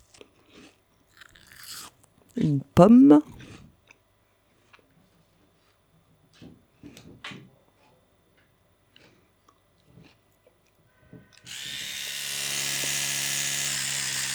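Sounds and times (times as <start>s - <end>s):
speech: 2.4s - 3.4s
electric toothbrush buzzing: 11.5s - 14.3s.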